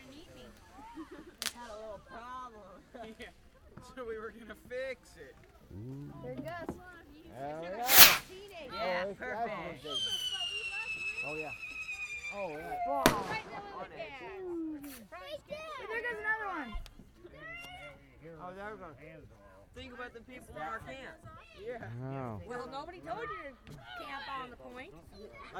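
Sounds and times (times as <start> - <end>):
speech: 1.0 - 10.3, 11.2 - 11.7, 12.3 - 16.9, 18.2 - 25.5
fireworks exploding outdoors: 7.9 - 8.3, 13.0 - 13.7
high whistling tone rising: 7.9 - 8.3, 9.9 - 12.6.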